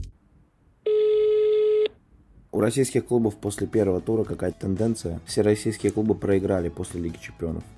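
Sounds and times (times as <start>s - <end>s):
telephone ring tone as a call is placed: 0.9s - 2.0s
speech: 2.6s - 7.7s.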